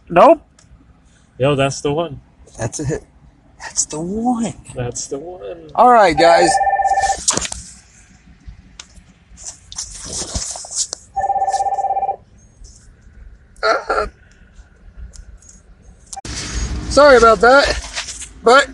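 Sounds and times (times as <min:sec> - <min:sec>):
speech: 0:00.1 - 0:00.5, 0:01.4 - 0:07.0, 0:17.0 - 0:17.8, 0:18.4 - 0:18.7
telephone electronic ring: 0:06.2 - 0:07.2, 0:11.2 - 0:12.2
short bursts of rustling noise: 0:06.8 - 0:13.2, 0:17.2 - 0:18.4.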